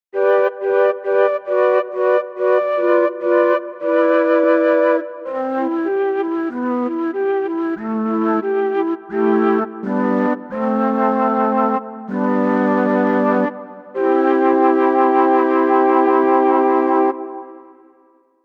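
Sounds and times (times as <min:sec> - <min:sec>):
mellotron: 0:00.2 - 0:18.4.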